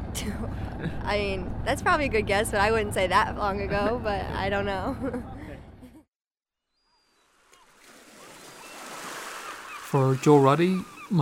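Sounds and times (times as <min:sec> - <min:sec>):
speech: 0:00.2 - 0:05.6, 0:09.9 - 0:11.1
sea waves washing ashore: 0:07.2 - 0:11.1.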